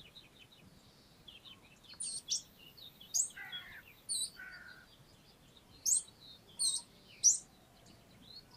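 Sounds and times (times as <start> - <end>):
lower harsh Eurasian blackcap calls: 0.0 - 8.5
Eurasian blackcap Sylvia atricapilla ticking calls: 1.5 - 7.5.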